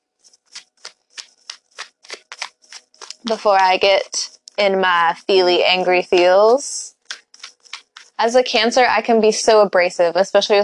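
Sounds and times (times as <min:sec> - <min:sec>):
tarot card deck being riffle-shuffled: 0:00.2 - 0:04.6, 0:06.9 - 0:08.2
speech: 0:03.2 - 0:06.9, 0:08.2 - 0:10.6.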